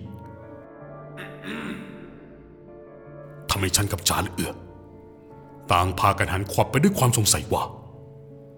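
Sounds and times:
man clearing his throat behind a school building: 1.2 - 2.4
speech: 3.6 - 4.7, 5.7 - 7.8.

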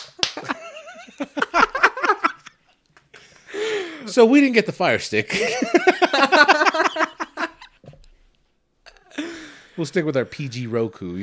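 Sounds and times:
hand slaps imitating skin slapping: 0.0 - 0.6
giggling and laughter: 0.4 - 3.5, 5.3 - 7.8
speech: 4.2 - 6.8, 9.8 - 11.2.

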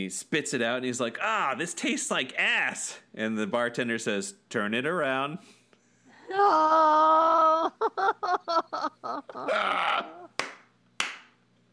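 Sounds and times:
speech: 0.0 - 5.6, 6.3 - 10.2
choppy rhythmic laughing bursts: 6.3 - 10.4
audience groaning at a bad joke: 9.4 - 10.4.

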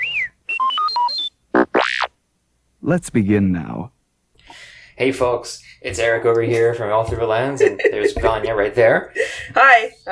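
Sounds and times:
electronic robot droid chirps and beeps: 0.0 - 2.1
speech: 2.8 - 4.0, 5.0 - 10.1
laughter: 7.4 - 8.5.

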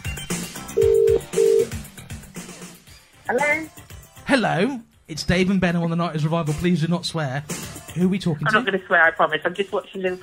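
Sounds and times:
busy music: 0.0 - 10.2
telephone ringing tone on outgoing call: 0.8 - 1.8
speech: 3.3 - 10.2.

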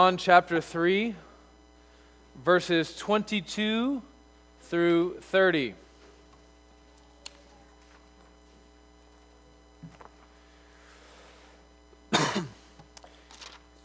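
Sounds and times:
speech: 0.0 - 1.3, 2.4 - 5.8
low steady electrical hum: 0.0 - 13.8
person coughing: 12.1 - 12.8.

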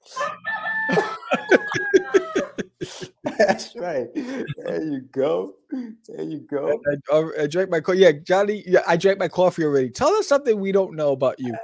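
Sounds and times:
rooster crowing cock-a-doodle-doo: 0.1 - 2.6
laughter: 0.2 - 5.0
speech: 0.9 - 1.1, 3.4 - 11.6.

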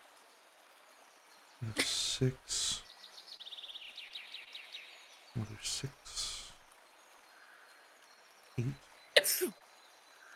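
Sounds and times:
speech: 1.6 - 2.7, 5.4 - 6.0, 8.6 - 8.8, 9.4 - 9.6
person sneezing: 1.7 - 2.8, 9.2 - 9.5.

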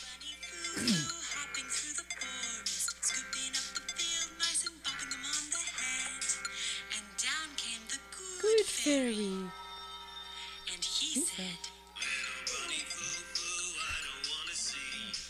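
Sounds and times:
techno-style children's song through a small phone speaker: 0.0 - 15.2.

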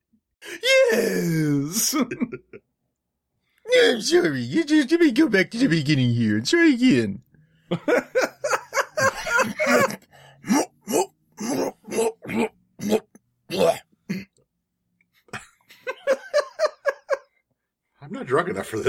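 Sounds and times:
speech: 0.5 - 2.7, 3.7 - 8.3, 18.4 - 18.8
laughter: 1.8 - 2.6, 7.7 - 10.7, 15.3 - 17.4
person clearing throat with short harsh vocal bursts: 9.5 - 14.4.

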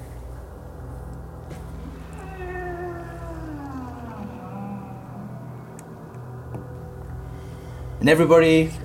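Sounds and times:
cat growling: 1.6 - 7.1
speech: 8.0 - 8.8.

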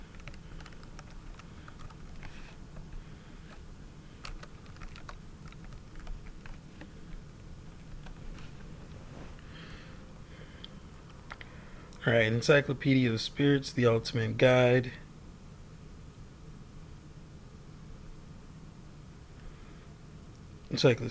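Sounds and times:
rapid typing on a computer keyboard: 0.0 - 2.4, 4.2 - 6.6
speech: 12.1 - 15.0, 20.8 - 21.0.

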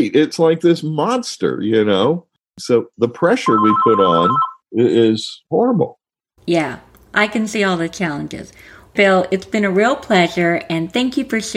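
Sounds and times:
speech: 0.0 - 11.5
telephone ringing with a steady electronic tone: 3.5 - 4.6.

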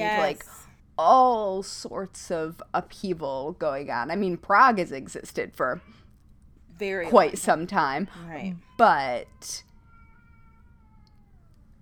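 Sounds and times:
speech: 0.0 - 6.0, 6.8 - 9.7
cat howling: 9.4 - 11.7.

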